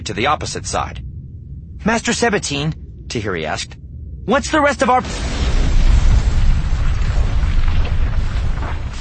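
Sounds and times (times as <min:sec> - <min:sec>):
speech: 0:00.0 - 0:01.1, 0:01.8 - 0:05.3
heavy sustained low rumble and roar: 0:00.0 - 0:08.9
explosive charge blasting a hatch: 0:04.8 - 0:08.9.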